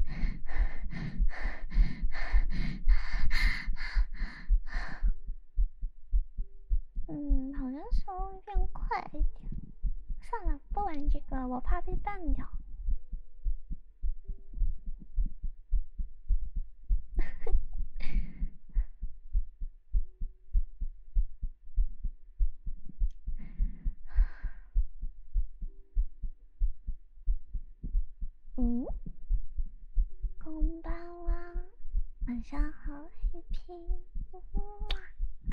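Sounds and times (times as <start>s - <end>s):
steady heartbeat thumping: 0.0s - 35.5s
speech: 11.0s - 12.6s
short high-pitched vocal sound: 30.4s - 31.8s, 32.5s - 35.5s.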